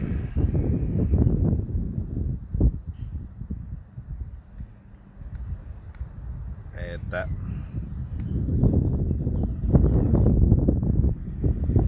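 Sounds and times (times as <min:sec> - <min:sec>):
wind buffeting a microphone: 0:00.0 - 0:11.8
speech: 0:07.1 - 0:07.4.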